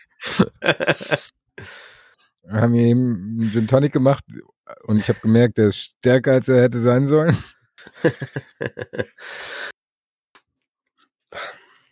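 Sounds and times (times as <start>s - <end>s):
laughter: 0.2s - 1.3s, 7.3s - 9.3s
speech: 0.4s - 1.4s, 2.5s - 9.7s
person yawning: 11.4s - 11.7s.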